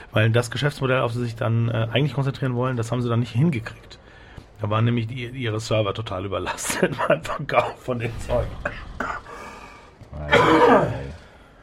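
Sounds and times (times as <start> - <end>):
speech: 0.1 - 4.0, 4.6 - 9.2
person clearing throat: 8.5 - 9.3, 10.2 - 11.2
person coughing with a rough burst: 8.5 - 9.4, 10.2 - 11.2.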